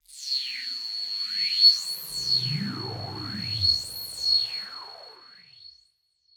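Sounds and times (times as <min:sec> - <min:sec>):
sci-fi sound design sweep from high pitch to low: 0:01.6 - 0:05.2.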